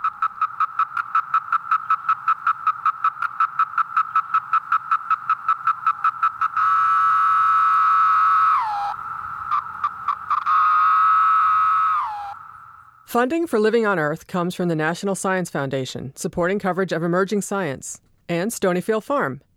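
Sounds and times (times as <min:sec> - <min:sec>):
17-year periodical cicadas chorusing: 0:00.0 - 0:13.1
speech: 0:13.1 - 0:19.5.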